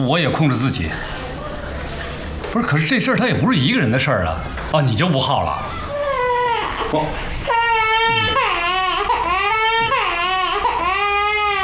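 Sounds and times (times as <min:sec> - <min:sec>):
speech: 0:00.0 - 0:01.2, 0:02.5 - 0:05.8, 0:06.9 - 0:07.4
baby crying: 0:05.7 - 0:11.6.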